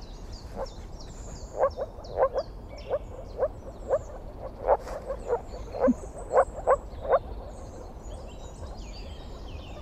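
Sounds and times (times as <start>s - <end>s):
high bird calls: 0.0s - 9.8s
moor frog calling in a marsh: 1.5s - 7.6s.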